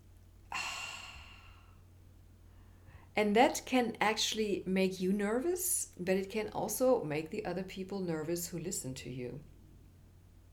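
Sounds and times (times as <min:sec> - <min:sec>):
person gasping for air: 0:00.5 - 0:01.7
speech: 0:03.2 - 0:09.5.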